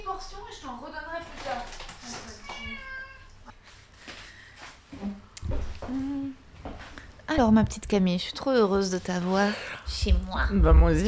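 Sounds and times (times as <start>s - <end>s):
speech: 0.1s - 3.0s, 7.4s - 11.0s
male cat meowing for food: 2.3s - 3.5s.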